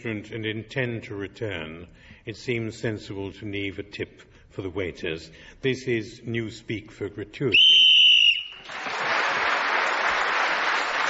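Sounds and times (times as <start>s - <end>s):
speech: 0.0s - 7.7s
short shrill whistle blast on a game show to end a round: 7.5s - 8.8s
audience applause: 8.6s - 11.0s.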